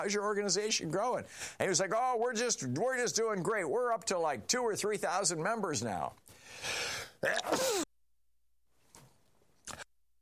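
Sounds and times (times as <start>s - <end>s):
speech: 0.0s - 7.8s
person sneezing: 7.2s - 7.9s.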